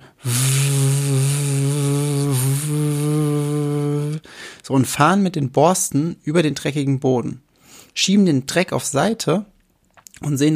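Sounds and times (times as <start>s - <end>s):
voice imitating a vacuum cleaner on floors with no carpet: 0.0s - 4.2s
speech: 4.7s - 7.4s, 8.0s - 9.5s, 10.2s - 10.5s.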